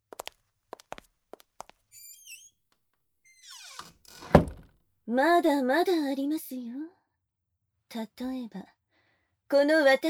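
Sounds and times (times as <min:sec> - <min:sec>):
soft footsteps: 0:00.1 - 0:02.3
high squeaky chirps: 0:01.9 - 0:02.5, 0:03.3 - 0:03.9
door creaking open: 0:01.9 - 0:02.6, 0:03.3 - 0:04.7
louder door scrape or knock: 0:03.5 - 0:04.7
speech: 0:05.1 - 0:07.0, 0:07.9 - 0:08.8, 0:09.5 - 0:10.0.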